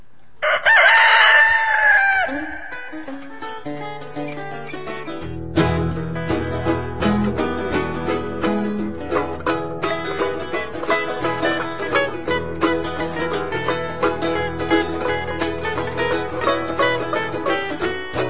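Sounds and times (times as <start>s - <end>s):
mascot rooster crowing: 0.4s - 3.0s
upbeat instrumental music with bass and percussion: 2.8s - 18.2s.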